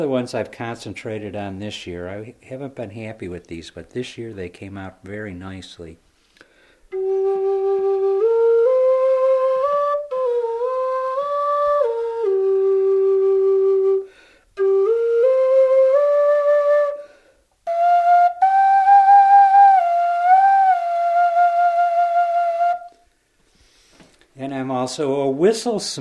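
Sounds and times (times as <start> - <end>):
speech: 0.0 - 6.0, 24.9 - 26.0
handmade Native American style flute playing a slow breathy melody: 6.9 - 23.1.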